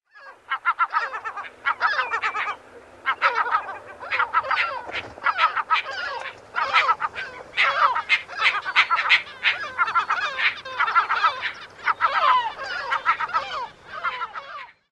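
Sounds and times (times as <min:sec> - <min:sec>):
bird calls at a colony: 0:00.1 - 0:14.9.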